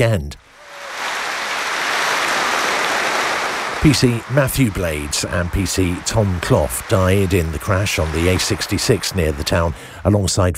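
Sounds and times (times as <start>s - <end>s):
speech: 0.0s - 0.4s, 3.8s - 10.5s
large crowd of football fans applauding as a minute's tribute: 0.5s - 10.0s
laughter: 0.9s - 9.8s.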